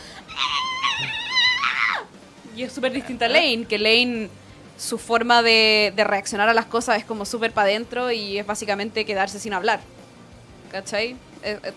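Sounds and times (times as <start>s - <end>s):
animated character screaming: 0.2s - 2.1s
speech: 2.6s - 10.0s, 10.7s - 11.7s.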